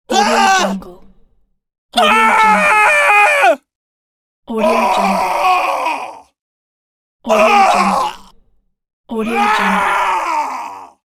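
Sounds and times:
man screaming: 0:00.1 - 0:00.8, 0:02.0 - 0:03.7, 0:04.6 - 0:06.3, 0:07.3 - 0:08.2, 0:09.2 - 0:11.0.

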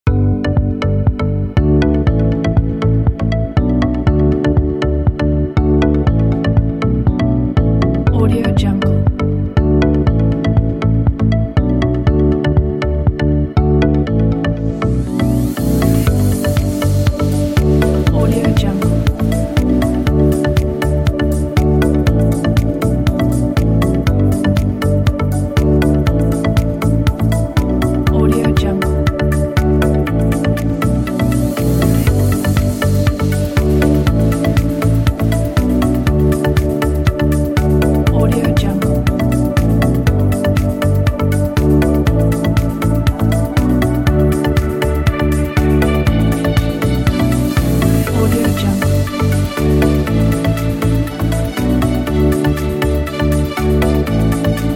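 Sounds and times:
upbeat inspiring summer corporate music kit: 0:00.0 - 0:54.7.

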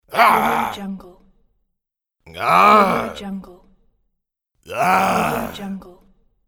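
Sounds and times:
man roaring: 0:00.1 - 0:00.8, 0:02.3 - 0:03.2, 0:04.7 - 0:05.7.

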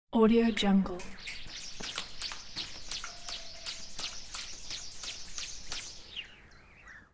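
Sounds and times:
thin metal wire spinning and twisting: 0:01.8 - 0:06.0.

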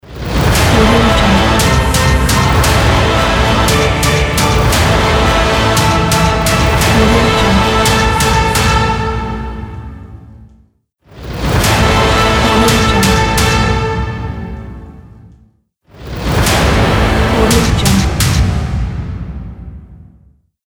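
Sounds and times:
epic logo music sting: 0:00.1 - 0:10.2, 0:11.3 - 0:15.0, 0:16.1 - 0:18.7.

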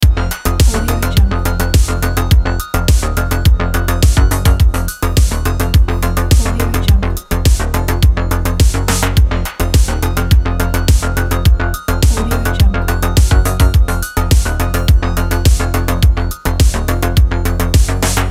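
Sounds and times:
synthwave bass loop: 0:00.0 - 0:18.2.

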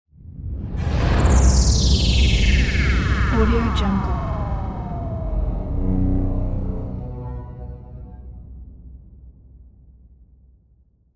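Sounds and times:
retro teleport effect: 0:00.9 - 0:08.2.

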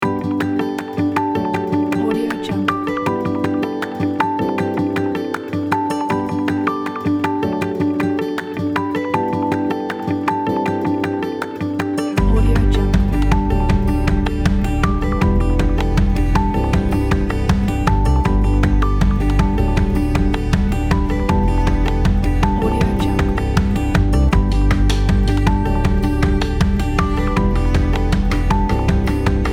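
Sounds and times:
motivational acoustic background music: 0:00.0 - 0:29.5.

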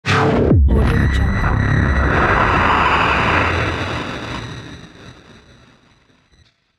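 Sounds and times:
dirty distortion stinger transition: 0:00.1 - 0:05.1.

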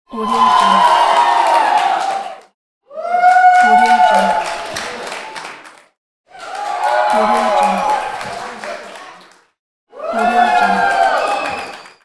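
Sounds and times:
small crowd clapping and cheering: 0:00.1 - 0:12.0.

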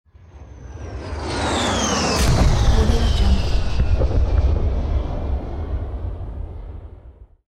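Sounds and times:
huge explosion: 0:02.1 - 0:07.4.

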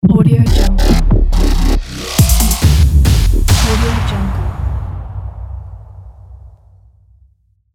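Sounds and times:
dubstep growl logo: 0:00.4 - 0:04.8.

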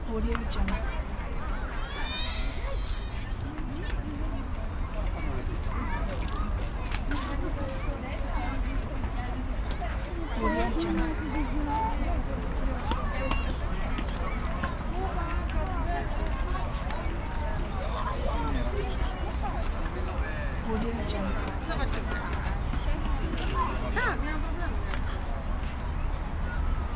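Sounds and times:
city pedestrian street ambience: 0:00.0 - 0:26.9.

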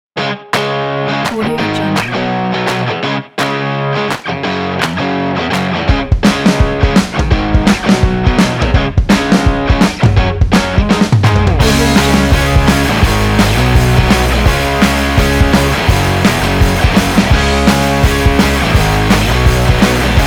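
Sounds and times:
upbeat indie promo rock music: 0:00.5 - 0:20.2.

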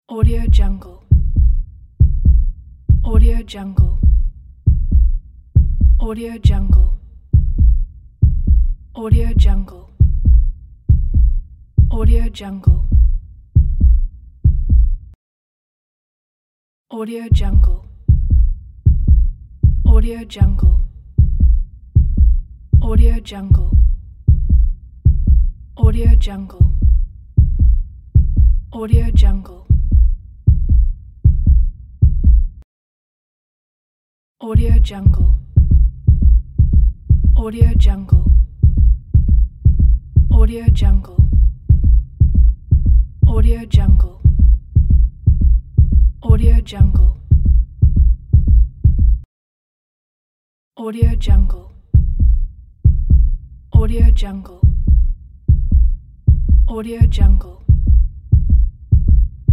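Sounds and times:
heartbeats: 0:00.2 - 0:15.2, 0:17.4 - 0:32.6, 0:34.6 - 0:49.3, 0:51.0 - 0:59.5.

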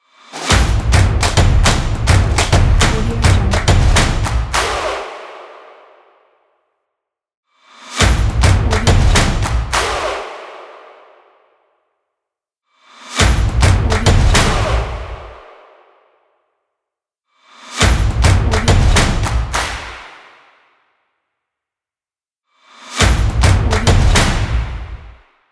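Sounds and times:
energetic stomps and claps logo: 0:00.4 - 0:05.9, 0:08.0 - 0:11.1, 0:13.2 - 0:15.7, 0:17.8 - 0:20.6, 0:23.0 - 0:25.3.

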